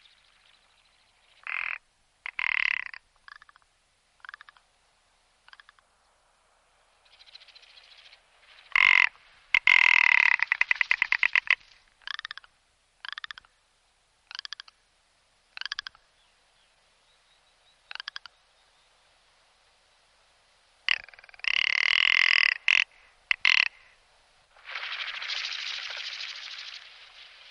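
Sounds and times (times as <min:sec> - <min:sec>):
rock ptarmigan long harsh rattling croak: 0:01.4 - 0:03.6, 0:04.2 - 0:04.6, 0:05.5 - 0:05.8, 0:08.7 - 0:13.5, 0:14.2 - 0:14.8, 0:15.5 - 0:16.0, 0:17.9 - 0:18.3, 0:20.9 - 0:24.0.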